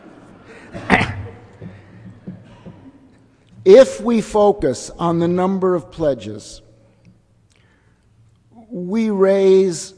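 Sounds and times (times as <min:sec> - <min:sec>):
people coughing in an audience: 0:00.4 - 0:03.3
throat noises: 0:00.6 - 0:03.0
speech: 0:03.6 - 0:06.6, 0:08.8 - 0:09.9.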